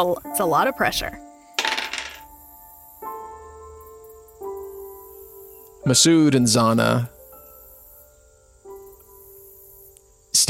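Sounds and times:
speech: 0:00.0 - 0:01.2, 0:05.9 - 0:07.2
percentile dice clattering across a hard table surface: 0:01.6 - 0:02.3.

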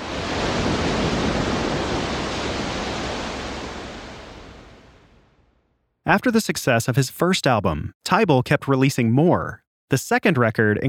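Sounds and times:
ocean surf: 0:00.0 - 0:05.5
speech: 0:06.1 - 0:10.8.

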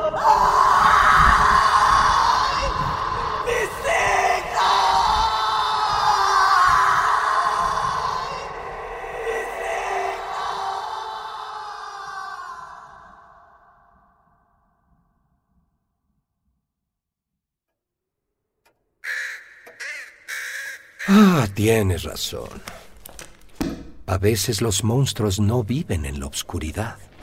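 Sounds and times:
person screaming at night as a storm clears: 0:00.2 - 0:13.6, 0:19.8 - 0:21.6
speech: 0:21.7 - 0:22.8, 0:24.1 - 0:27.1.

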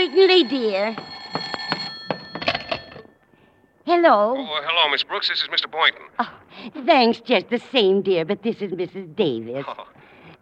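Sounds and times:
speech: 0:00.0 - 0:01.5, 0:03.9 - 0:10.4
old-fashioned telephone bell ringing: 0:00.0 - 0:03.8.

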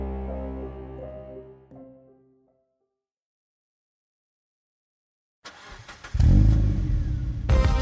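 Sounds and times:
1986 Mustang engine idling and revving in an arcade parking lot: 0:05.5 - 0:07.6.

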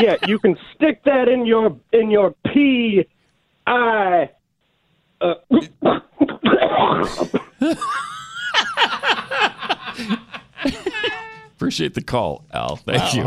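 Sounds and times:
laughter: 0:00.0 - 0:00.6, 0:06.7 - 0:11.5
speech: 0:00.0 - 0:04.4, 0:05.2 - 0:13.2
voice imitating a hacking cough like coughing up a furball: 0:05.5 - 0:07.6.

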